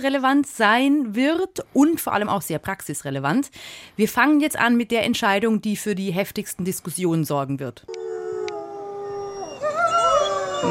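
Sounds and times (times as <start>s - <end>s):
speech: 0.0s - 8.2s
wolf howling: 7.9s - 10.6s.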